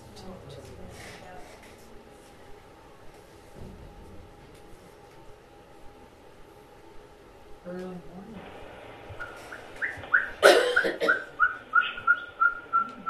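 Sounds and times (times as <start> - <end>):
faint murmur of noise: 0.0 - 13.0
owl hooting at night: 9.2 - 13.0.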